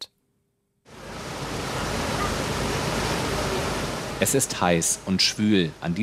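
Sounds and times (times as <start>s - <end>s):
motorboat engine chugging along the coast: 0.9s - 5.3s
rush of water and wind: 0.9s - 6.0s
wash of waves and spray: 0.9s - 6.0s
speech: 4.2s - 6.0s.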